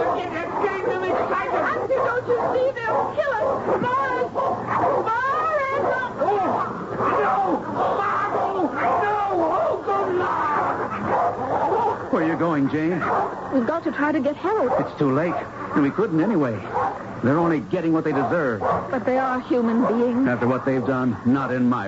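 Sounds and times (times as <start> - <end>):
people screaming frantically: 0.0 - 12.4
people shouting: 0.0 - 12.4
several dogs barking, yelping and snarling while attacking people: 0.0 - 21.8
speech: 2.2 - 5.2, 12.6 - 21.8.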